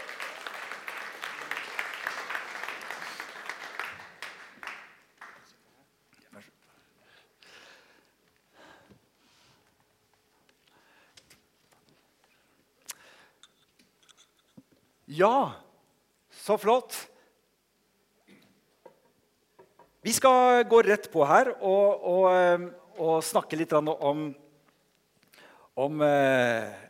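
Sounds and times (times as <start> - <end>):
audience applauding on a church platform: 0.0 - 5.7
speech: 15.1 - 15.6, 16.5 - 17.0, 20.2 - 24.4, 25.8 - 26.8.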